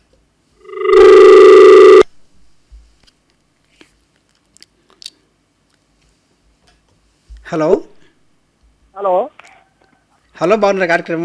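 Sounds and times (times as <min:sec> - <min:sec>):
steady buzzing telephone tone as a call-in line drops: 0:00.6 - 0:02.1
speech: 0:07.5 - 0:07.9, 0:09.0 - 0:09.4, 0:10.4 - 0:11.2.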